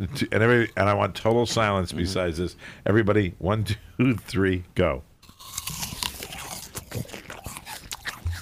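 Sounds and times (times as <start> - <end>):
speech: 0.0 - 5.1
chewing and crunching apples: 5.2 - 8.3
several people biting into crisp Honeycrisp apples: 5.2 - 8.3.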